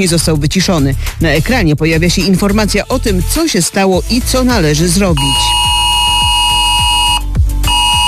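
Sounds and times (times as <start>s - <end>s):
speech: 0.0s - 5.8s
low rhythmic thumping pulses: 4.0s - 8.0s
British emergency alert tone on mobile phones: 5.1s - 8.0s.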